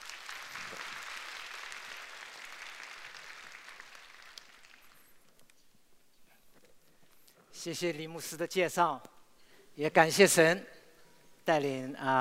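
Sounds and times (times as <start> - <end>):
audience applause welcoming a speaker: 0.0 - 5.2
speech: 7.6 - 9.1, 9.8 - 10.7, 11.4 - 12.2.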